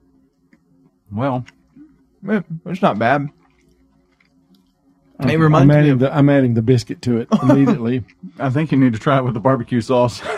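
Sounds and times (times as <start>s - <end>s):
low steady hum: 0.0s - 10.3s
chewing crispy fried chicken: 0.4s - 5.2s, 7.8s - 8.8s
speech: 1.1s - 1.6s, 2.2s - 3.4s, 5.2s - 10.3s
laughter: 7.3s - 7.9s, 10.1s - 10.3s.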